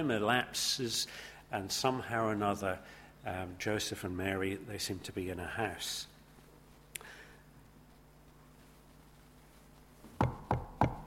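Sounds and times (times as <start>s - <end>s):
speech: 0.0s - 6.1s
firm knocks on the door of a house: 10.2s - 11.0s.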